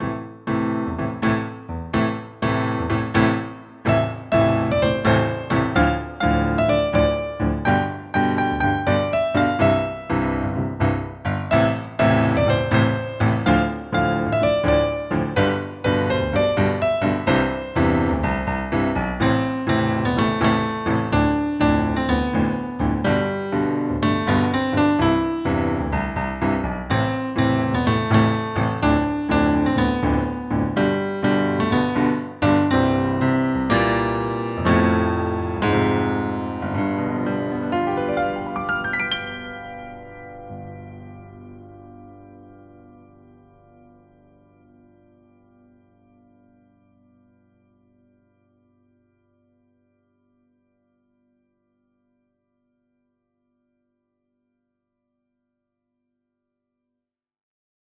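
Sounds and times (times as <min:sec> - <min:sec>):
duet melody: 0:00.6 - 0:41.5.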